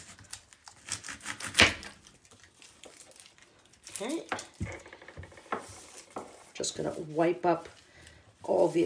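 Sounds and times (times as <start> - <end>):
knife cutting through an onion: 0.0 - 2.1
speech: 4.0 - 4.8, 6.6 - 7.8, 8.5 - 8.8.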